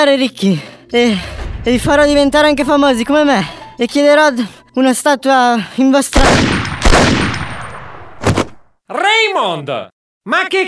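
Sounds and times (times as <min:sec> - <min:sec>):
speech: 0:00.0 - 0:07.2, 0:08.9 - 0:10.6
pistol gunshots with metallic ringing: 0:06.2 - 0:08.5.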